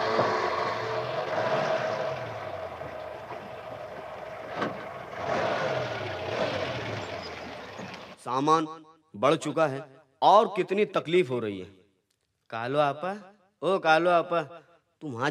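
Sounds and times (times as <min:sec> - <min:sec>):
truck engine rumbling and idling: 0:00.0 - 0:08.2
speech: 0:08.3 - 0:11.8, 0:12.5 - 0:15.2.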